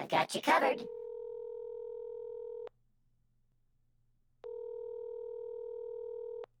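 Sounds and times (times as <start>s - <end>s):
speech: 0.0s - 1.0s
steady electronic telephone tone of a call being placed: 0.9s - 2.7s, 4.4s - 6.5s.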